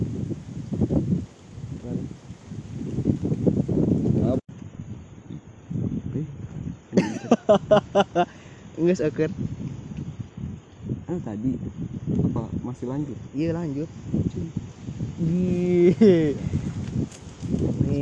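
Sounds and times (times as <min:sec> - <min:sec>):
low rumbling gusts of wind buffeting a microphone: 0:00.0 - 0:17.9
laughter: 0:07.0 - 0:08.4
speech: 0:07.5 - 0:09.6, 0:11.1 - 0:17.9.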